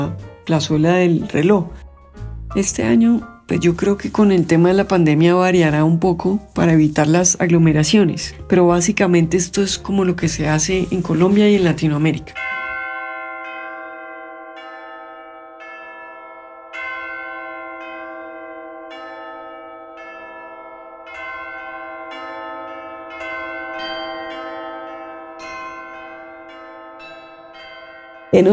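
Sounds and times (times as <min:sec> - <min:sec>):
speech: 0:00.0 - 0:01.8, 0:02.5 - 0:12.5, 0:28.3 - 0:28.5
bells ringing in a peal: 0:06.6 - 0:28.5.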